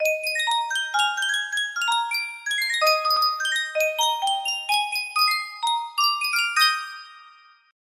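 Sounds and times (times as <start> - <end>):
miniature music box: 0.0 - 7.8.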